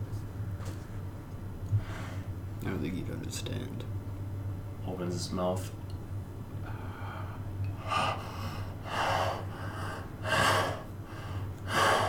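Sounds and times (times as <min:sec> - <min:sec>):
low constant hum: 0:00.0 - 0:12.0
speech: 0:02.6 - 0:04.0, 0:04.9 - 0:05.8
voice imitating very deep heavy breathing: 0:07.8 - 0:10.9, 0:11.7 - 0:12.0.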